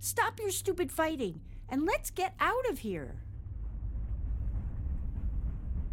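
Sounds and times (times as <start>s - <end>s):
speech: 0.0s - 3.3s
moving freight train rumbling: 3.2s - 5.9s.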